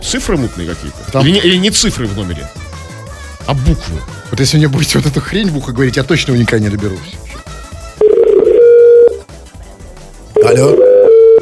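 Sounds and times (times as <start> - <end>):
speech: 0.1 - 2.7, 3.4 - 7.2, 10.4 - 10.8
telephone line tone beep: 8.0 - 9.2, 10.4 - 11.4.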